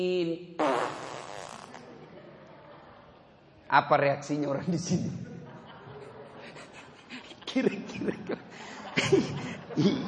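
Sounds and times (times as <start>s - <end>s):
speech: 0.0s - 0.9s, 3.7s - 5.3s, 7.6s - 10.0s
voice imitating a fart: 0.6s - 1.8s
laughter: 1.8s - 3.2s, 5.2s - 10.0s.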